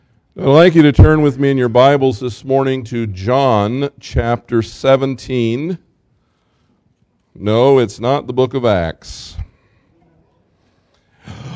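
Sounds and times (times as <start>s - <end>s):
speech: 0.4s - 5.8s, 7.4s - 9.4s
audience member gasping: 11.1s - 11.5s.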